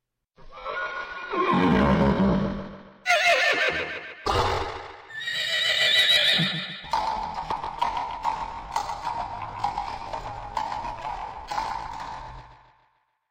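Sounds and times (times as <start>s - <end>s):
horse whinnying: 0.4s - 6.9s
horse galloping hoofbeats: 6.2s - 12.7s.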